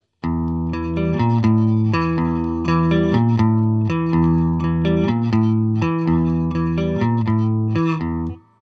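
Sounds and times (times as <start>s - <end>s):
guitar riff: 0.2s - 8.6s.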